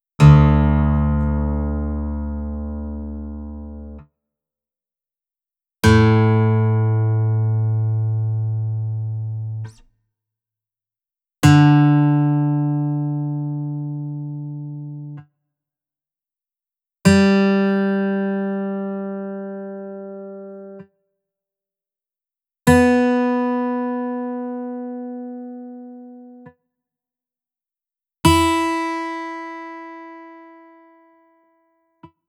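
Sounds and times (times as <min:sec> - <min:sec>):
guitar in drop D tuning: 0:00.2 - 0:04.1, 0:05.8 - 0:09.9, 0:11.4 - 0:15.3, 0:17.0 - 0:21.0, 0:22.7 - 0:26.5, 0:28.2 - 0:31.5.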